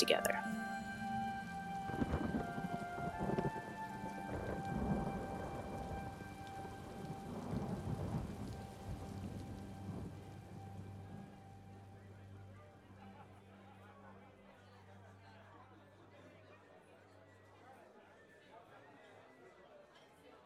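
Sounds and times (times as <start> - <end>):
speech: 0.0 - 0.6
light rain pattering: 0.0 - 15.6
low thunder rumbling from a moderately storm: 0.5 - 11.7.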